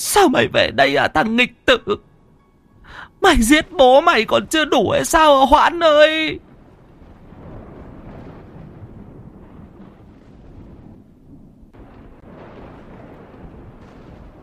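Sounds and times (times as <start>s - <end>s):
speech: 0.0s - 2.1s, 2.9s - 6.5s
howling wind as rain approaches: 2.7s - 14.4s
rumbling thunder as rain approaches: 3.4s - 14.4s.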